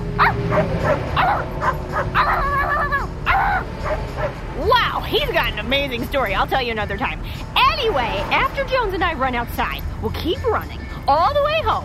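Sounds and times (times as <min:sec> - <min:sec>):
low engine-like rumble: 0:00.0 - 0:11.8
dog barking and yipping: 0:00.2 - 0:04.4
speech: 0:05.7 - 0:11.8.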